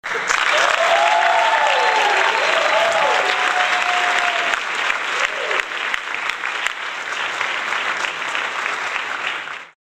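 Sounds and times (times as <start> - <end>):
applause: 0.0 - 9.8
cheering: 0.1 - 6.4.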